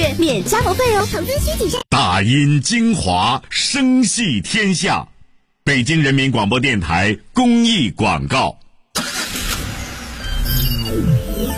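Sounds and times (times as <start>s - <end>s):
speech: 0.2s - 9.2s
car engine revving: 9.0s - 11.5s.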